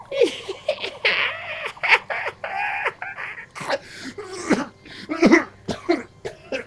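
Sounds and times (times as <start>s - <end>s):
voice imitating a witch's rattling drawn-out cackle: 0.1s - 3.5s
harsh coughs: 3.6s - 6.6s.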